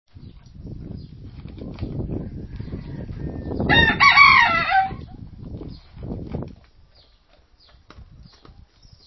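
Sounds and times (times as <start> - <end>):
rooster crowing cock-a-doodle-doo: 2.2 - 5.0.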